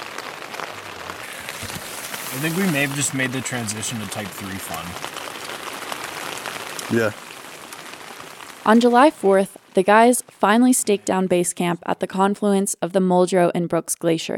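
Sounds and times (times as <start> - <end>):
steady rain pattering on a surface: 0.0 - 11.2
speech: 2.3 - 5.3, 6.9 - 7.2, 8.7 - 14.3.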